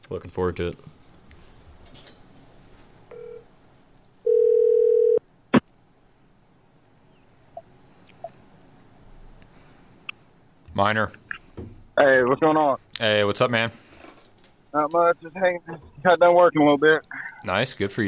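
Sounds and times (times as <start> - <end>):
speech: 0.1 - 1.0, 10.8 - 11.2, 12.0 - 13.8, 14.7 - 18.0
telephone ringback tone as a call is placed: 3.1 - 3.5, 4.2 - 5.2.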